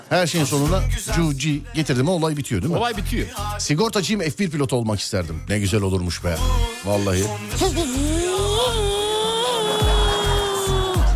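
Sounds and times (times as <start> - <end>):
speech: 0.1 - 8.8
person imitating a racing car engine revving: 7.6 - 11.0
laughter: 9.7 - 11.1.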